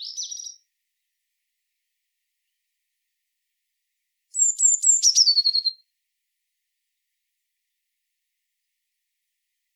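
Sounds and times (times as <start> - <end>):
Eurasian blue tit Cyanistes caeruleus singing sharp thin notes and a trill: 0.0 - 0.6, 4.3 - 5.8.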